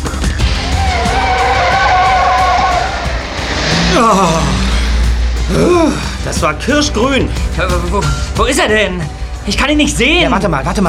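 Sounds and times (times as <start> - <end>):
car accelerating hard toward a traffic-light crossing: 0.5 - 7.5
speech: 4.0 - 4.6, 5.5 - 10.8.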